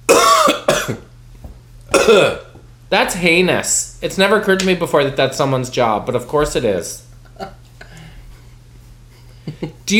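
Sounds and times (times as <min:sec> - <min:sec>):
person coughing raspily: 0:00.1 - 0:01.1, 0:01.9 - 0:02.6
speech: 0:02.1 - 0:07.6, 0:09.5 - 0:09.9.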